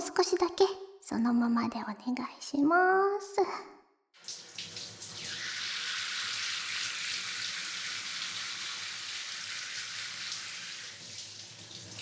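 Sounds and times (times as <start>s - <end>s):
speech: 0.2s - 3.8s
shower spraying water rinsing shampoo from hair: 4.2s - 12.0s.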